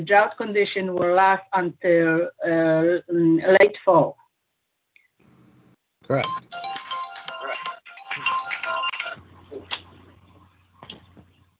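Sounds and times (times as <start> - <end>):
speech: 0.0 - 4.2, 6.1 - 6.8
phone bright melodic electronic ringtone: 6.2 - 9.2
low steady hum: 9.2 - 11.5.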